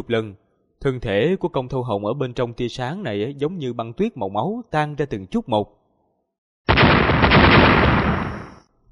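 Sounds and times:
speech: 0.0 - 5.8
loud explosion tearing apart a blood-mist island in a fantasy battle: 6.7 - 8.6.

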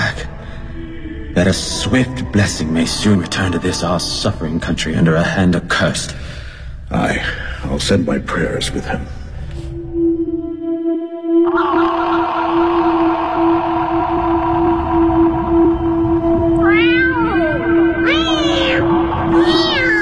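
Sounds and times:
dense sustained tonal background: 0.0 - 19.9
steady low drone: 0.0 - 19.9
speech: 1.4 - 6.3, 6.9 - 9.2
cat meowing: 16.6 - 19.9.

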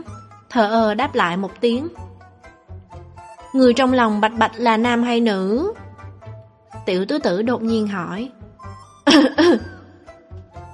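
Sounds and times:
speech: 0.5 - 2.0, 3.6 - 5.8, 6.9 - 8.4, 9.1 - 9.7
person coughing after choking on food: 9.1 - 9.9.

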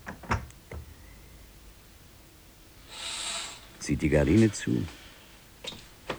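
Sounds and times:
window being closed: 0.0 - 1.0, 3.6 - 6.1
ventilation flap being closed: 0.0 - 1.2, 4.4 - 6.1
faint steady hiss: 0.0 - 6.1
speech: 3.9 - 5.0.

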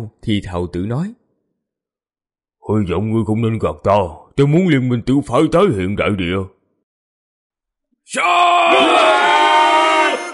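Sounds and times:
speech: 0.0 - 1.2, 2.7 - 6.6, 8.1 - 9.0
crowd of many people screaming together: 8.2 - 10.3.

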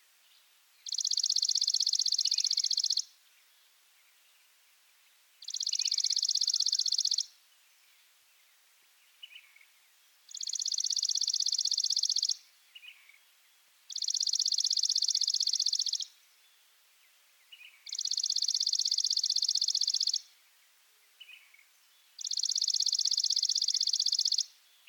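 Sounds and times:
Chipping sparrow Spizella passerina arizonae singing dry trills: 0.8 - 3.2, 5.4 - 7.9, 9.1 - 16.7, 17.4 - 20.3, 21.1 - 24.8.

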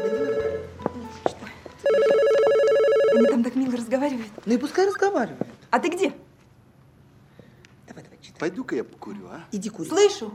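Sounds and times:
telephone ringing indoors: 0.0 - 1.0, 1.8 - 3.7
speech: 4.0 - 6.2, 8.4 - 10.3.

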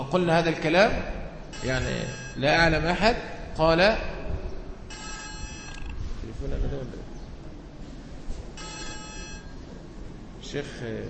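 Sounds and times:
noise: 0.0 - 11.0
speech: 0.1 - 4.1, 6.3 - 7.1, 10.5 - 11.0
telephone ringing from an incoming call: 1.5 - 2.6, 4.9 - 6.0, 8.6 - 9.6.

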